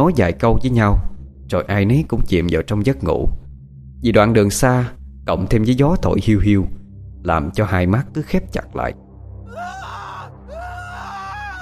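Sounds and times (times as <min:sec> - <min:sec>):
speech: 0:00.0 - 0:03.4, 0:04.0 - 0:09.8
boy screaming in fright as his hammock rope snaps: 0:09.5 - 0:11.6.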